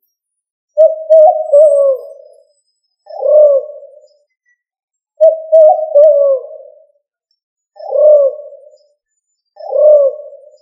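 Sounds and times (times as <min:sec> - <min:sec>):
pigeon of family Columbidae cooing: 0:00.8 - 0:02.3, 0:03.1 - 0:04.0, 0:05.2 - 0:06.9, 0:07.8 - 0:08.8, 0:09.6 - 0:10.6.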